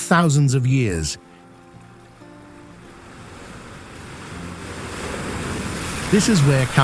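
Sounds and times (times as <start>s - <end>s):
speech: 0.1s - 1.3s, 6.1s - 6.8s
polar wind roaring: 2.3s - 6.8s.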